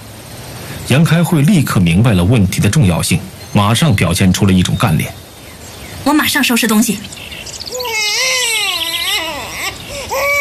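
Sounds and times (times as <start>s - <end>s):
speech: 0.9s - 5.2s, 6.0s - 7.4s
infant crying: 7.7s - 10.3s.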